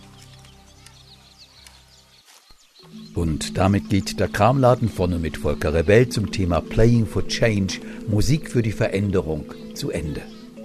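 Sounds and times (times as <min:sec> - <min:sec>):
children playing: 0:00.0 - 0:01.9
birds chirping: 0:00.0 - 0:10.6
speech: 0:02.8 - 0:10.4
sustained humming tones: 0:02.9 - 0:10.6.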